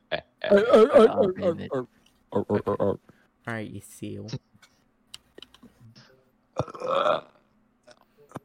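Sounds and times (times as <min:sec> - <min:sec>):
person burping: 0:00.1 - 0:01.6, 0:06.6 - 0:08.4
speech: 0:00.1 - 0:04.5, 0:06.6 - 0:07.3.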